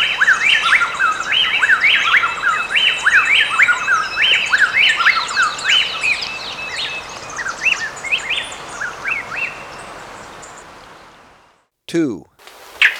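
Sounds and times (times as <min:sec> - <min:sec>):
plain-tailed wren song chorus in Ecuador: 0:00.0 - 0:11.6, 0:12.3 - 0:12.9
thin high hiss: 0:12.4 - 0:12.9.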